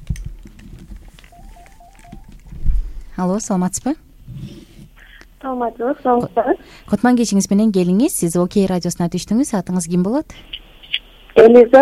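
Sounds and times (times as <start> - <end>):
faint telephone beeps from an incoming call connecting: 1.3 - 2.3
speech: 3.2 - 4.0, 5.4 - 10.6, 11.4 - 11.8.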